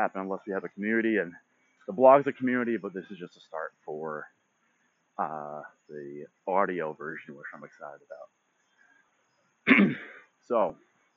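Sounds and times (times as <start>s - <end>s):
speech: 0.0s - 4.4s, 5.2s - 8.4s, 9.6s - 10.9s
person coughing after water went down the wrong way: 9.7s - 10.3s.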